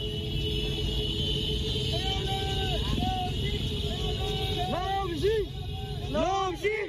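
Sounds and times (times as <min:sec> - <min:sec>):
motorcycle engines of protesters riding in a street demonstration in Nyaung-U: 0:00.0 - 0:06.7.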